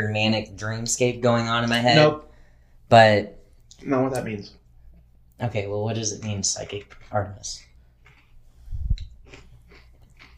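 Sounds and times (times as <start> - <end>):
speech: 0.0 - 2.3, 2.9 - 4.6, 5.4 - 7.7
person chewing food: 6.8 - 10.3.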